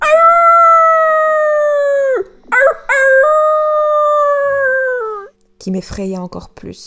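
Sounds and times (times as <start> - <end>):
wolf howling on a heath: 0.0 - 5.4
speech: 5.6 - 6.8.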